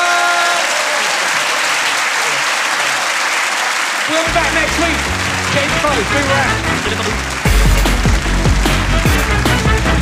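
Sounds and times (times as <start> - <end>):
audience applause: 0.0 - 10.0
speech: 4.2 - 7.8.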